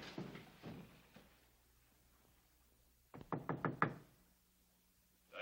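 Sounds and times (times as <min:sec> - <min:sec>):
sharp knocking on a door: 0:03.1 - 0:04.1.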